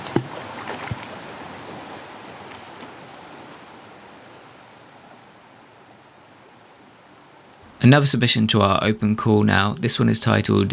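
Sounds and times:
water splashing: 0:00.0 - 0:03.6
water lapping: 0:00.0 - 0:05.2
light wind: 0:00.0 - 0:10.7
speech: 0:07.8 - 0:10.7.

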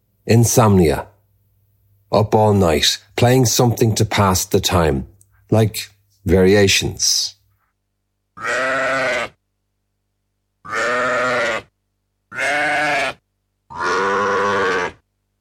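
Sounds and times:
speech: 0:00.3 - 0:01.1, 0:02.1 - 0:07.4
sheep bleating: 0:08.4 - 0:09.4, 0:10.6 - 0:11.7, 0:12.3 - 0:15.0.

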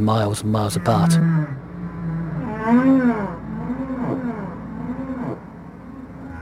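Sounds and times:
speech: 0:00.0 - 0:01.6, 0:02.6 - 0:03.4
humpback whale song underwater in the ocean: 0:00.7 - 0:06.3.

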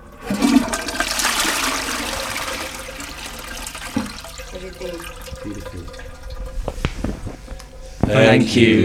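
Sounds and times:
toilet flushing with rushing water and gurgling refill: 0:00.0 - 0:08.5
speech: 0:04.6 - 0:06.2, 0:08.1 - 0:08.8
small knocks: 0:05.2 - 0:08.2.

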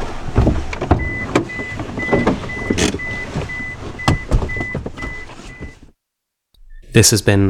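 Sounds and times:
car engine rumbling: 0:00.0 - 0:06.0
car mechanical clunks: 0:00.3 - 0:05.8
short evenly spaced electronic beeps: 0:01.0 - 0:05.8
speech: 0:07.0 - 0:07.4.

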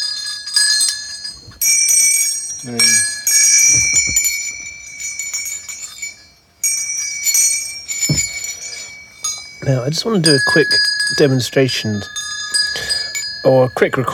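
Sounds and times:
tuned bells with arbitrary tuning being struck: 0:00.0 - 0:14.1
speech: 0:02.6 - 0:03.1, 0:09.7 - 0:12.2, 0:13.4 - 0:14.1
low knocks: 0:03.7 - 0:04.6, 0:08.0 - 0:08.5.

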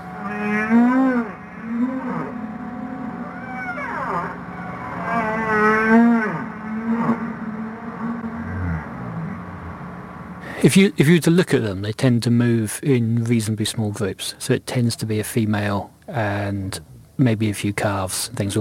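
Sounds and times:
humpback whale song with long deep moaning calls: 0:00.0 - 0:09.8
speech: 0:10.7 - 0:18.5.

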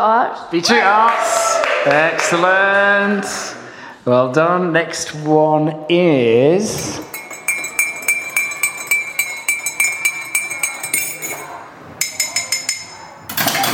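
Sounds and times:
speech: 0:00.0 - 0:07.1
teaspoon stirring in a cup with metallic clinks: 0:06.9 - 0:13.7.

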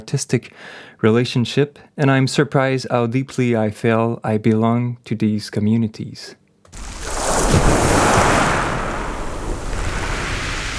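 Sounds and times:
speech: 0:00.0 - 0:06.9
ocean waves breaking on a shore: 0:06.7 - 0:10.7
low wind rumble: 0:06.8 - 0:10.7.

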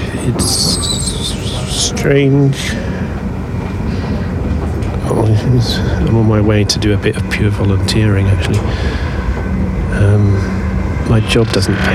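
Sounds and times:
train running with rattling rumble: 0:00.0 - 0:11.9
speech: 0:00.2 - 0:03.0, 0:05.4 - 0:09.1, 0:10.0 - 0:11.9.

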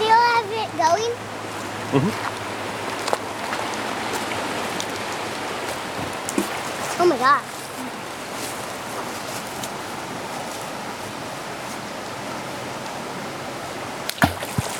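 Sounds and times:
steady rushing water in a stream: 0:00.0 - 0:14.7
speech: 0:01.9 - 0:02.3, 0:07.2 - 0:07.5
thrown rock splashing into stream water: 0:14.1 - 0:14.7.

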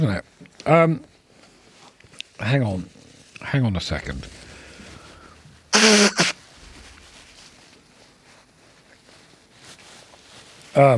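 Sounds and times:
speech: 0:00.0 - 0:01.1, 0:02.4 - 0:04.4, 0:05.8 - 0:06.3, 0:10.8 - 0:10.9
loud sneeze: 0:05.8 - 0:06.4.

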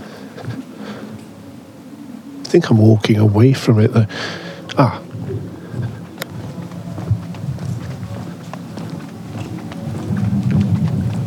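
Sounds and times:
rain falling through trees: 0:00.0 - 0:11.2
speech: 0:02.5 - 0:05.1
low rumble: 0:04.6 - 0:11.2.

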